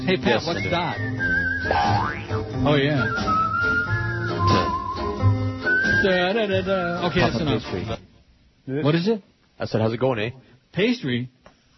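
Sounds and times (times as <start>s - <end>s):
speech: 0.0s - 3.5s, 6.0s - 8.1s, 8.7s - 11.4s
music track with steady backing: 0.0s - 8.0s
whistled melody over a music track: 0.4s - 7.0s.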